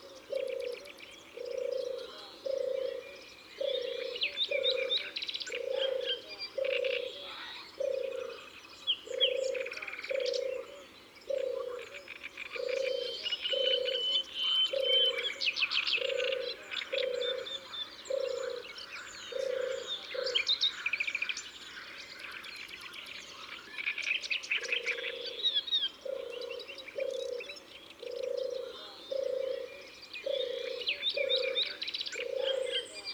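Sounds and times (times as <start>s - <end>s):
European turtle dove singing: 0.0s - 20.6s, 24.1s - 33.1s.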